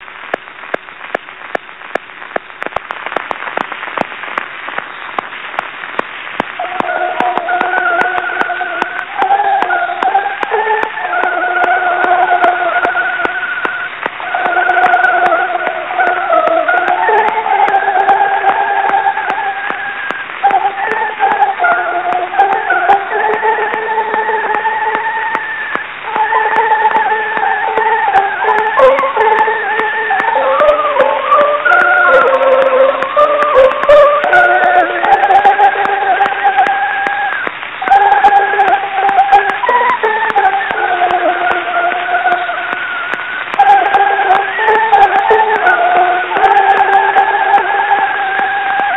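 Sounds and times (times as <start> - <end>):
royal anthem on a phonograph cylinder recording: 0.0 - 48.9.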